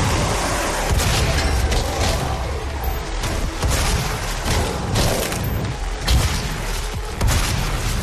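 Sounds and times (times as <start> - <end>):
demons roaring in a video game: 0.0 - 3.7
explosive blasts in a first-person shooter video game: 0.0 - 8.0
gunfire in a demon-fighting first-person shooter video game: 0.0 - 8.0.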